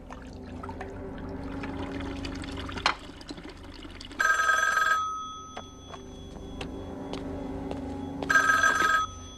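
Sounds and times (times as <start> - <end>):
water running and trickling: 0.0 - 4.3
telephone ringing in short trilling bursts: 4.2 - 6.9, 8.0 - 9.3.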